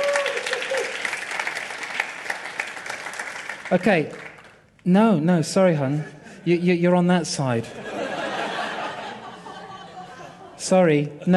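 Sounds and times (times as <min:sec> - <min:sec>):
crowd applause: 0:00.0 - 0:04.6
speech: 0:03.7 - 0:04.2, 0:04.8 - 0:07.9, 0:10.7 - 0:11.3
laughter: 0:07.7 - 0:11.3.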